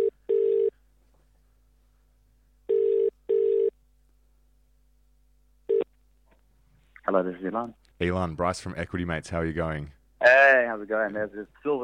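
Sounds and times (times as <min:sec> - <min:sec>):
telephone ringing tone on an outgoing call: 0:00.0 - 0:00.7, 0:02.7 - 0:03.7, 0:05.7 - 0:05.9
speech: 0:07.1 - 0:11.8.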